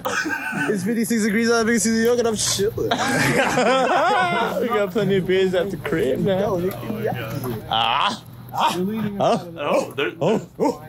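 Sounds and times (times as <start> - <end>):
laughter: 0.0 - 1.0, 2.8 - 5.0
speech: 0.7 - 10.8
person imitating dog barking: 7.8 - 10.8.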